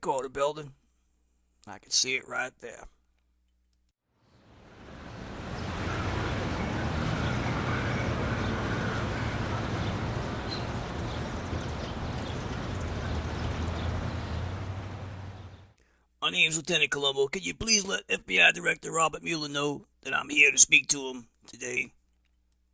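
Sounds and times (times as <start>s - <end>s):
speech: 0.0s - 0.8s, 1.6s - 3.0s, 16.2s - 22.0s
city street traffic: 4.3s - 15.8s.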